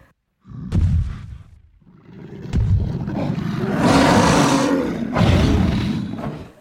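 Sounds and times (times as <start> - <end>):
cave bear roaring: 1.8 - 6.6.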